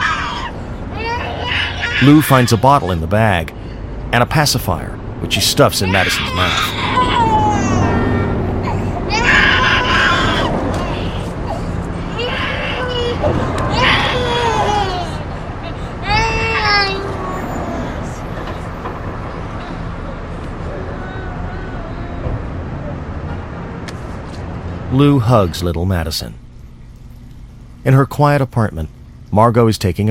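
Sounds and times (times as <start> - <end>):
baby screaming and crying: 0.0 - 3.0, 5.3 - 18.3, 20.6 - 22.3
speech: 2.0 - 7.0, 24.9 - 26.4, 27.8 - 30.0.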